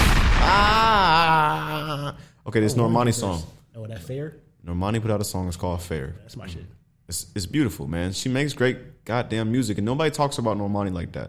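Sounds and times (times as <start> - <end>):
gunshot sound effect: 0.0 - 1.1
speech: 2.4 - 11.2.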